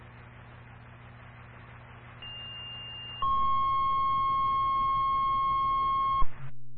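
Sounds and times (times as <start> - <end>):
fire dispatch electronic paging tone over a radio channel: 2.2 - 6.3.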